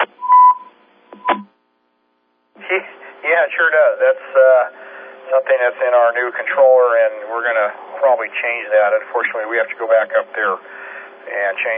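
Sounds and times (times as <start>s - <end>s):
radio roger beep tone: 0.0s - 1.5s
speech: 2.8s - 11.7s.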